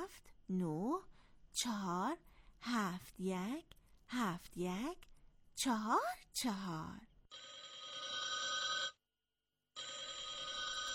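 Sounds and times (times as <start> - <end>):
speech: 0.0 - 7.6
telephone ringing: 7.3 - 9.0, 9.8 - 10.9.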